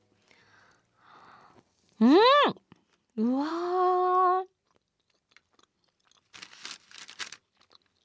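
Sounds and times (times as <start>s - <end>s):
speech: 2.0s - 2.6s, 3.2s - 4.5s
crunching bites of toaster-crisped bread: 4.5s - 8.0s.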